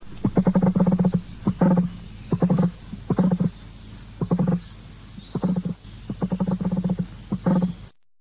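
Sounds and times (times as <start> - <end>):
emu: 0.0 - 7.9.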